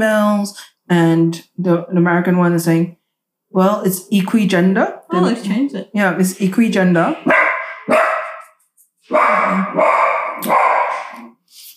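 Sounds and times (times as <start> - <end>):
speech: 0.0 - 8.0, 9.1 - 10.7
dog barking at a locked door: 7.2 - 11.3.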